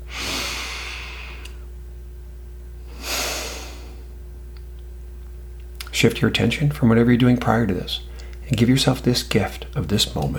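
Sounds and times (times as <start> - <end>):
slow deep breaths during a mindfulness exercise: 0.0 - 1.7, 2.8 - 4.2, 8.1 - 8.5
speech: 6.0 - 10.3.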